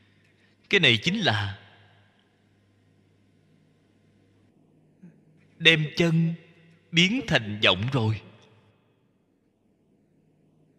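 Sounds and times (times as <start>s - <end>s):
air conditioner running with low mechanical hum and airy hiss: 0.0s - 10.7s
speech: 0.7s - 1.6s, 5.6s - 8.3s.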